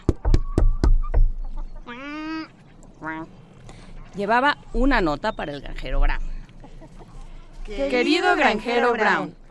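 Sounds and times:
sharp knocks on a door: 0:00.0 - 0:01.4
speech: 0:04.2 - 0:06.3, 0:07.7 - 0:09.4.

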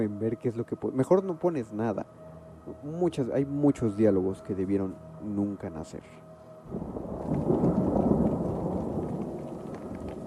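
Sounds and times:
speech: 0:00.0 - 0:07.0
rolling thunder in a thunderstorm: 0:06.7 - 0:10.2
steady rain hiss: 0:06.7 - 0:10.2.

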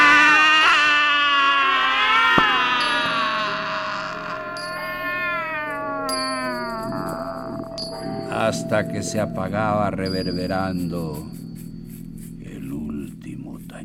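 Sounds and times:
cat letting out a long drawn-out yowling meow: 0:00.0 - 0:08.3
speech: 0:08.6 - 0:11.4.

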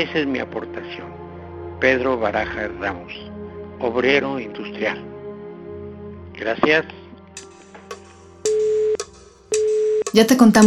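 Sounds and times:
speech: 0:00.0 - 0:01.2, 0:01.8 - 0:05.1, 0:06.4 - 0:07.0, 0:10.1 - 0:10.6
telephone busy tone after call ends: 0:08.5 - 0:09.0, 0:09.6 - 0:10.1.

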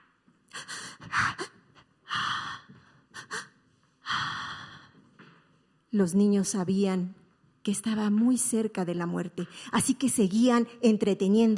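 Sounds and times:
old woman breathing with labored rasping breaths and gasps: 0:00.5 - 0:05.2
speech: 0:06.0 - 0:11.5.

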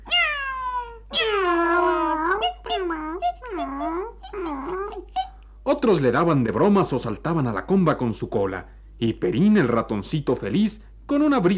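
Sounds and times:
cat meowing: 0:00.0 - 0:05.3
speech: 0:05.7 - 0:11.5.

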